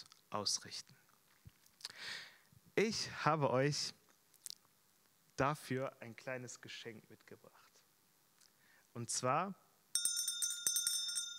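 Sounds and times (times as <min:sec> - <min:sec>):
speech: 0:00.0 - 0:01.0, 0:02.8 - 0:04.0, 0:05.4 - 0:07.6, 0:09.0 - 0:09.6
small bell ringing rapidly: 0:09.9 - 0:11.3.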